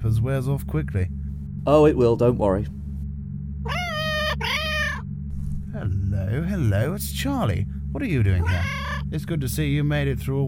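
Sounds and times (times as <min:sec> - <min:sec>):
speech: 0:00.0 - 0:02.8, 0:05.8 - 0:10.4
steady low hum: 0:00.0 - 0:10.4
cat meowing: 0:03.7 - 0:05.0, 0:08.4 - 0:09.0.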